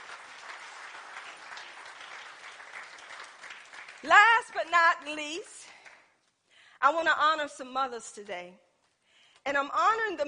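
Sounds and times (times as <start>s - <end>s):
large crowd clapping: 0.0s - 6.1s
speech: 4.0s - 5.6s, 6.8s - 8.6s, 9.4s - 10.2s.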